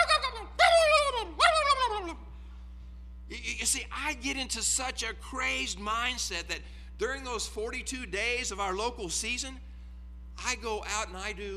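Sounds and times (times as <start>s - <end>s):
wild turkey tom gobbling at sunrise: 0.0s - 2.1s
speech: 3.7s - 9.7s, 10.4s - 11.5s.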